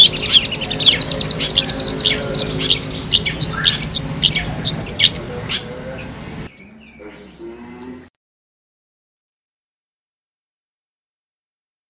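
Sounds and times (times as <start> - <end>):
long-tailed shrike competition-style song: 0.0 - 7.0
faint hum: 0.0 - 8.1.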